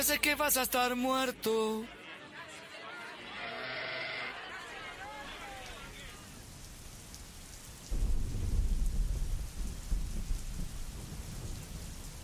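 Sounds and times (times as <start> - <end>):
speech: 0.0 - 2.0
laughter: 1.4 - 6.3
steady rain: 3.2 - 12.2
short bleating animal call: 3.3 - 4.3
deep rolling rumble of thunder: 7.8 - 12.2.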